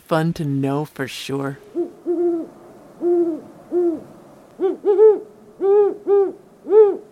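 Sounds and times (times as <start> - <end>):
speech: 0.1 - 1.7
great horned owls hooting: 1.7 - 7.1.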